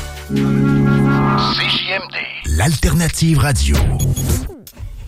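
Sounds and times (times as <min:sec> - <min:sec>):
descending whine of a car, possibly power windows: 0:00.2 - 0:02.2
speech: 0:00.3 - 0:00.8, 0:01.4 - 0:04.6.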